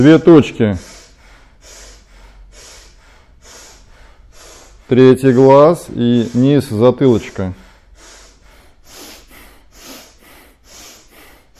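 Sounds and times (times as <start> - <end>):
speech: 0.0 - 0.9, 4.9 - 7.6
forceful bhastrika yoga breathing from the belly: 0.0 - 11.5.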